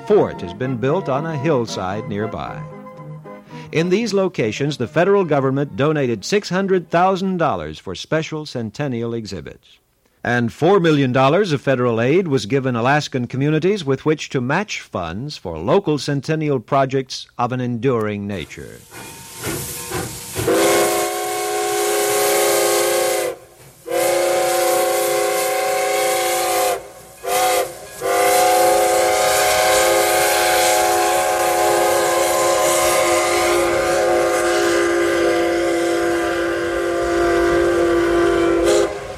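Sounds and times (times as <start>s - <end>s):
speech: 0.1s - 2.7s, 3.7s - 19.7s
antique steam train whistle blowing: 18.8s - 39.1s.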